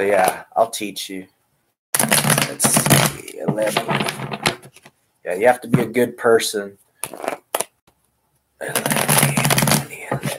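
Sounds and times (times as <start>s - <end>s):
speech: 0.0s - 1.4s, 2.5s - 7.3s, 8.6s - 9.2s
tarot cards being shuffled: 2.0s - 5.0s, 7.0s - 7.8s, 8.7s - 10.3s.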